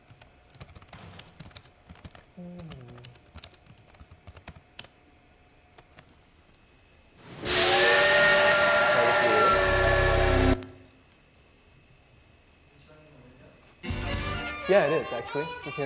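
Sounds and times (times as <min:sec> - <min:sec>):
quick computer keyboard typing clicks: 0:00.0 - 0:04.9
steam train whistle from a railroad video game on a computer: 0:07.4 - 0:10.9
speech: 0:14.7 - 0:15.8.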